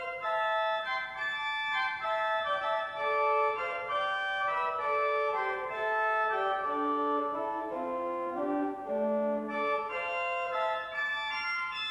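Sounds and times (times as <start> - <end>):
pipe organ mixture stop: 0.2 - 11.8.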